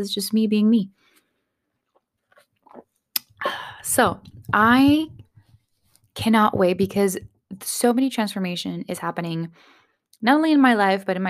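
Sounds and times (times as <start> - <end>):
speech: 0.0 - 1.1, 3.4 - 5.2, 6.2 - 11.2
person sipping a hot drink: 1.8 - 3.8.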